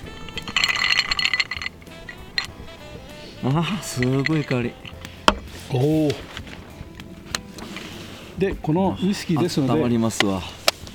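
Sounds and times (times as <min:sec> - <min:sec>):
glasses of Japanese whisky clinking in a toast: 0:00.0 - 0:05.4
speech: 0:03.4 - 0:04.9, 0:05.7 - 0:06.3, 0:08.4 - 0:10.6.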